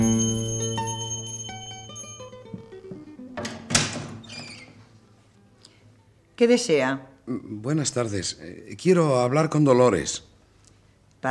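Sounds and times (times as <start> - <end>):
doorbell chime: 0.0 - 2.8
door being opened with a clatter: 3.4 - 4.8
speech: 6.4 - 10.3.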